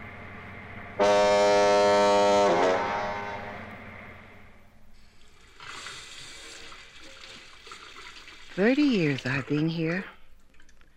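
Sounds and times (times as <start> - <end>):
lighthouse foghorn at the end of a pass: 1.0 - 3.8
speech: 8.6 - 10.2.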